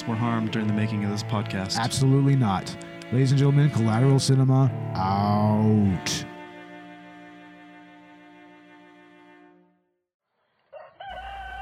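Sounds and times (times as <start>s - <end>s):
speech: 0.1s - 6.3s
rooster crowing cock-a-doodle-doo: 10.5s - 11.5s.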